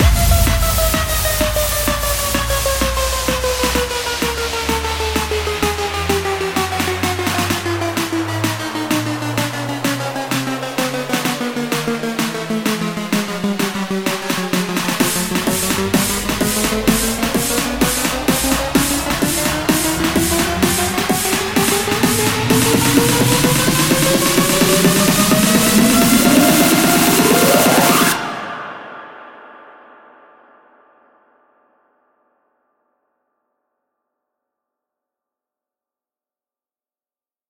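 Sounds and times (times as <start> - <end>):
full music loop in F from a construction kit: 0.0 - 28.2.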